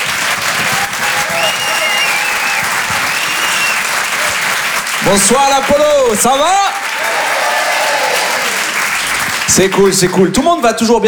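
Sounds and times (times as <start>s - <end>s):
theatre audience at a comedy show applauding: 0.0s - 11.0s
speech: 5.1s - 6.8s, 9.5s - 11.0s.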